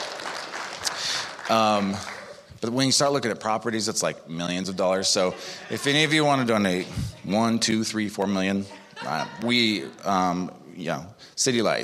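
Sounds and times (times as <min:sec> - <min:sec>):
church audience applause: 0:00.0 - 0:02.6
speech: 0:01.5 - 0:11.8
laughter: 0:05.0 - 0:07.7, 0:08.4 - 0:10.4.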